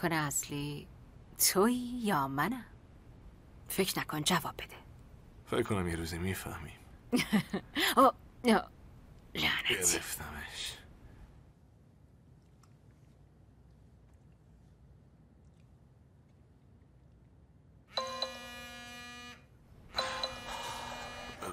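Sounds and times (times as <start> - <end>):
speech: 0.0 - 2.7, 3.7 - 4.8, 5.5 - 10.8
phone ringing with a bright harmonic electronic ringtone: 17.9 - 21.5.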